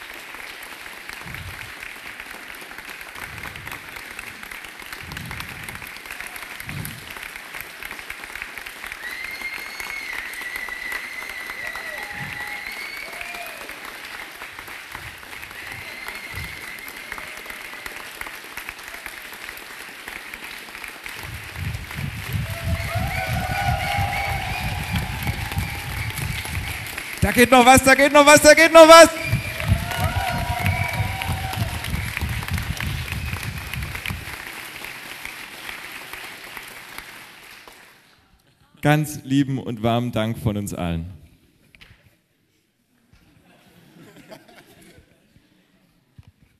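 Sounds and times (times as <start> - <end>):
audience applause: 0.0 - 38.2
crowd cheering: 3.0 - 8.0, 8.6 - 19.5, 20.2 - 37.6
faint whistling from a crowd: 9.0 - 13.2, 15.6 - 17.1, 22.8 - 27.2, 29.1 - 29.8
speech: 27.3 - 29.2, 38.9 - 41.2
laughter: 43.3 - 45.6.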